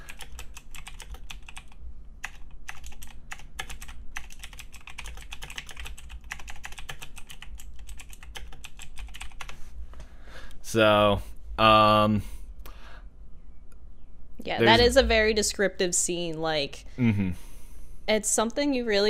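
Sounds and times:
low steady hum: 0.0 - 6.4, 7.0 - 19.0
person typing a message on a computer keyboard: 0.0 - 9.6
speech: 10.7 - 12.3, 14.5 - 17.4, 18.1 - 19.0.

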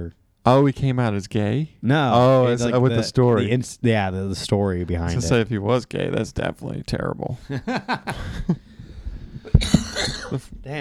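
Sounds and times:
speech: 0.0 - 8.7, 9.6 - 10.8
laughter: 7.4 - 8.7
person coughing: 9.5 - 10.5.

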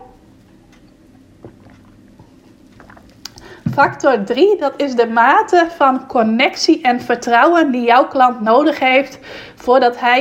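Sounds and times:
person sipping water: 1.2 - 3.6
speech: 3.8 - 10.1.

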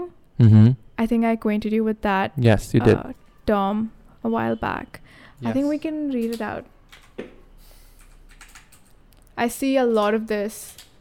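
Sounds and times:
speech: 0.0 - 7.3, 9.4 - 10.9
quick light typing on a computer keyboard: 6.2 - 7.2, 8.0 - 9.3.

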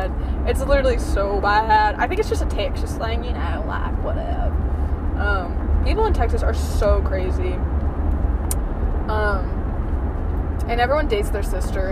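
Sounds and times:
car moving in traffic: 0.0 - 11.9
speech: 0.5 - 7.7, 9.1 - 9.6, 10.7 - 11.9.

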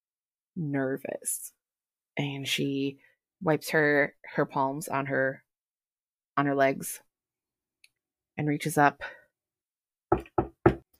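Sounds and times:
speech: 0.6 - 1.6, 2.2 - 5.4, 6.4 - 7.1, 8.4 - 9.2
knocking on a wooden door: 10.1 - 10.9.

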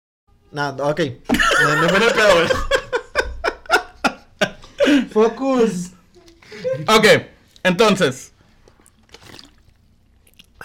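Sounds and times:
speech: 0.5 - 2.7, 5.2 - 6.0, 6.6 - 8.3
laughter: 1.3 - 5.6, 6.4 - 7.0
faint lip and swallowing noises: 8.6 - 10.6
person sipping a drink: 8.7 - 10.6.

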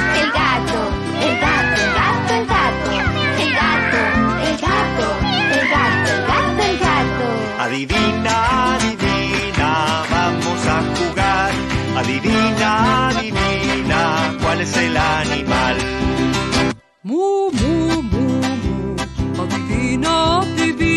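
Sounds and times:
voice singing imitated cat meows in an animal guessing song: 0.0 - 0.6, 1.2 - 6.7
loud upbeat music with a driving beat: 0.0 - 16.8, 17.6 - 20.9.

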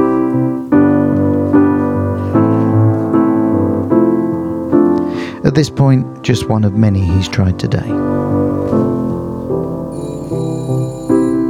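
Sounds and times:
piano chords: 0.0 - 11.4
speech: 5.6 - 8.3
1969 GPO telephone bell ringing: 9.9 - 11.4.

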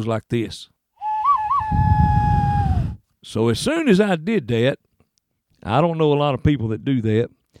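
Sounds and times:
speech: 0.0 - 0.8, 1.6 - 2.2, 3.2 - 4.9, 5.6 - 7.4
owl-like hand whistle blown into cupped fists: 1.0 - 3.0.

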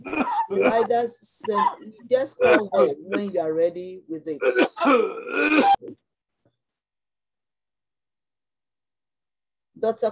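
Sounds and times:
man coughing: 0.0 - 0.9, 1.5 - 3.3, 4.4 - 6.0
speech: 0.0 - 6.0, 9.8 - 10.1.

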